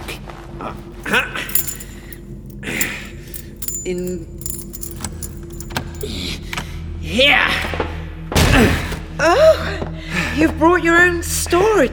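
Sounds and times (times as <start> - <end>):
speech: 0.6 - 1.4, 3.9 - 4.4, 6.0 - 6.5, 7.1 - 7.9, 8.6 - 9.8, 10.4 - 11.9
keys jangling: 0.8 - 6.2.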